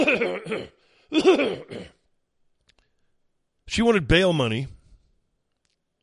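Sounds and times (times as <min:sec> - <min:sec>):
speech: 0:00.0 - 0:02.0, 0:03.7 - 0:04.8
person coughing: 0:00.0 - 0:02.1.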